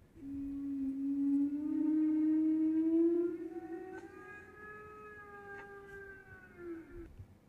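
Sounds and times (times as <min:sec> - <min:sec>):
pilot whale call: 0:00.2 - 0:07.1
faint clicks: 0:03.9 - 0:07.3.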